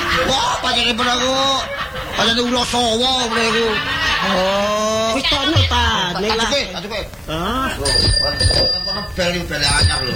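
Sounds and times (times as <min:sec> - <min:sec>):
laughter: 0:00.0 - 0:07.1
speech: 0:00.2 - 0:10.1
new bicycle bell ringing: 0:07.8 - 0:10.1.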